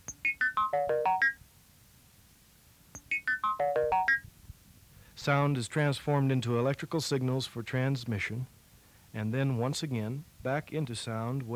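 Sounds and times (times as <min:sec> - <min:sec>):
electronic telephone ringtone with bright chime-like notes: 0:00.0 - 0:01.4, 0:03.0 - 0:04.3
speech: 0:00.7 - 0:01.4, 0:05.2 - 0:08.6, 0:09.2 - 0:11.5.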